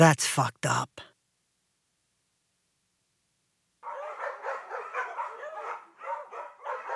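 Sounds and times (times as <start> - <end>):
speech: 0.0 - 1.1
dog barking in rapid yaps: 3.8 - 6.9.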